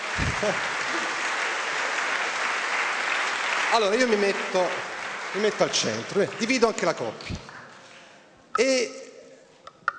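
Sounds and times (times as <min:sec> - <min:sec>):
crowd applauding to welcome guests: 0:00.0 - 0:07.8
speech: 0:00.2 - 0:01.0, 0:03.7 - 0:07.5, 0:08.6 - 0:09.0.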